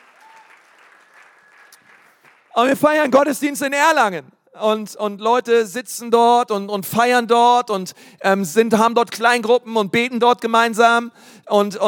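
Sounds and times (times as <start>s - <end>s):
crowd applauding: 0.0s - 2.6s
speech: 2.6s - 11.8s.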